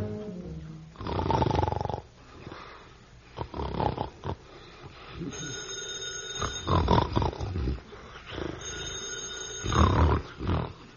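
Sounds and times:
heavy rumbling snoring: 0.9s - 2.6s, 3.3s - 4.5s, 6.4s - 8.9s, 9.6s - 10.9s
telephone bell ringing: 5.3s - 6.9s, 8.6s - 10.0s.

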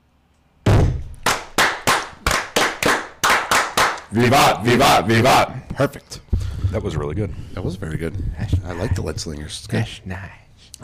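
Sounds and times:
group clapping in unison as ritual fire: 1.2s - 4.6s
speech: 4.1s - 10.8s.

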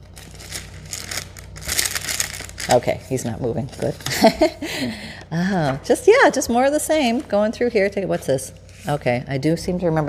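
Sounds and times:
paper crinkling: 0.0s - 4.5s
speech: 2.7s - 10.0s.

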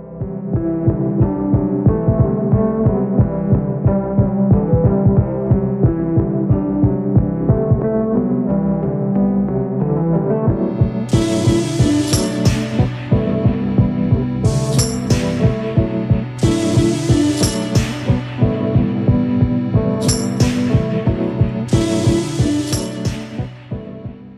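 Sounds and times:
steady throbbing low pulse: 0.0s - 8.2s, 10.5s - 24.3s
repeating keyboard riff: 0.0s - 24.3s
bright crashing percussion hits: 14.4s - 23.5s.

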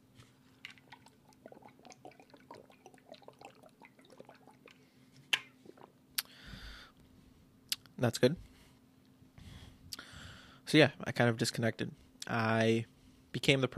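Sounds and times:
person gulping water from a large half-gallon water bottle: 0.7s - 6.3s
speech: 8.0s - 8.5s, 10.7s - 13.7s.

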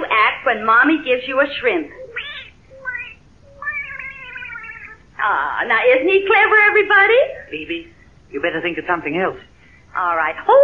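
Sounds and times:
faint hiss: 0.0s - 10.6s
speech: 0.4s - 2.0s, 5.2s - 10.6s
cat meowing: 2.0s - 5.1s.

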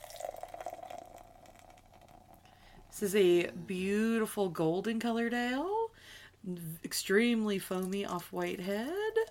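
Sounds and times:
vanilla cream ale poured from a can into a glass: 0.0s - 2.7s, 7.8s - 9.2s
speech: 3.0s - 5.8s, 6.4s - 9.2s.

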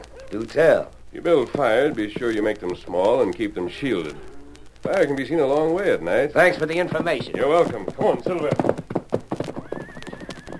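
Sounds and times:
horse hooves clip-clopping away: 0.0s - 10.5s
speech: 0.3s - 8.8s
horse neighing: 9.6s - 10.5s.

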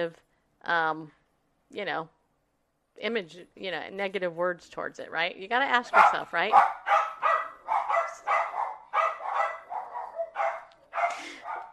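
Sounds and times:
speech: 0.0s - 2.2s, 3.0s - 6.8s
dogs barking in sharp yaps: 5.8s - 11.7s.

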